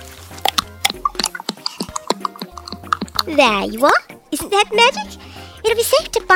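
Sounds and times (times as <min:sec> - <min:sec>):
juice dripping from a twisted bottle fruit: 0:00.3 - 0:03.6
speech: 0:03.3 - 0:06.3.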